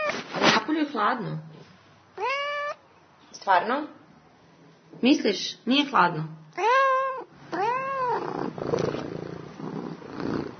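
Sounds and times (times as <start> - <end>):
speech: 0.9 - 1.5, 2.2 - 2.4, 3.4 - 4.0, 4.9 - 6.8
Persian cat meowing: 2.2 - 2.8, 6.6 - 8.6
Persian cat purring with a low rough rumble: 7.1 - 10.5.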